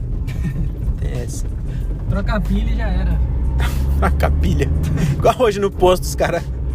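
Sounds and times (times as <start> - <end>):
Celta car engine running roughly and misfiring: 0.0 - 6.7
laughter: 0.2 - 0.9
speech: 1.3 - 6.6.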